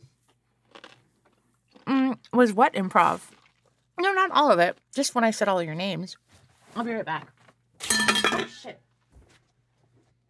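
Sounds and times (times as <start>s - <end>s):
someone biting into a pickle: 0.3s - 2.4s, 3.1s - 3.9s
wet chewing crunches of a pickle: 0.3s - 5.3s
speech: 2.2s - 3.4s, 4.0s - 6.2s, 6.8s - 7.4s.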